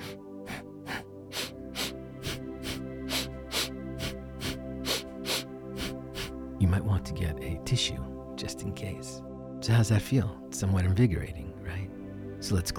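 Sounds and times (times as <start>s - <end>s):
quick rhythmic inhales and exhales through the nostrils: 0.0s - 6.5s
speech: 6.7s - 12.7s.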